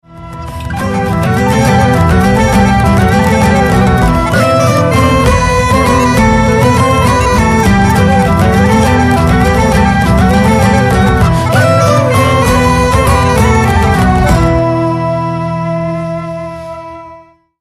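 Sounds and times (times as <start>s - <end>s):
flute pipe: 0.0s - 17.5s.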